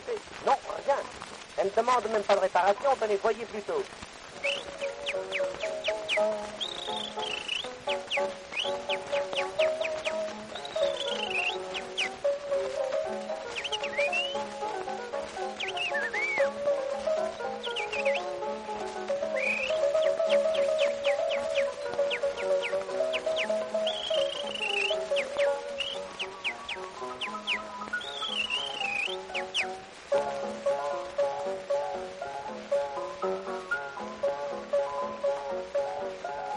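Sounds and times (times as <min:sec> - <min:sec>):
speech: 0:01.7 - 0:04.6
musical accompaniment: 0:04.3 - 0:36.5
person whistling imitating birdsong: 0:04.4 - 0:12.4, 0:13.2 - 0:14.5, 0:15.4 - 0:18.4, 0:19.2 - 0:29.8.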